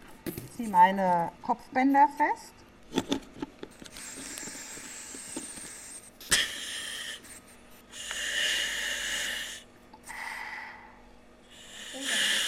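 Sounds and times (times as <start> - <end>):
speech: 0.3 - 3.5
breathing through a firefighter's compressed-air respirator mask: 3.9 - 12.4.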